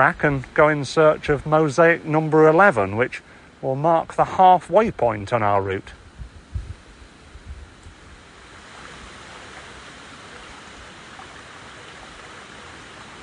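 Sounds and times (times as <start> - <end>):
speech: 0.0 - 6.0
small stream babbling and rushing: 0.0 - 13.2.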